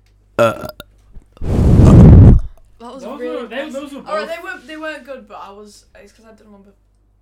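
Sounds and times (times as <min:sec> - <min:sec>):
burp into the microphone: 0:00.4 - 0:00.8, 0:01.8 - 0:02.6
speech: 0:00.4 - 0:00.8, 0:02.8 - 0:06.8.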